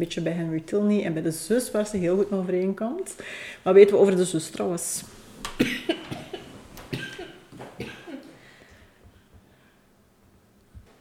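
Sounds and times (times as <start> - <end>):
speech: 0.0 - 5.9
harsh barking coughing fit: 5.6 - 8.3.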